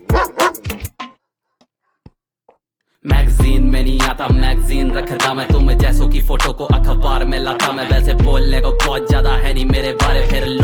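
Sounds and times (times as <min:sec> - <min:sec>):
loud dog barks: 0:00.1 - 0:00.7
speech: 0:03.0 - 0:10.6.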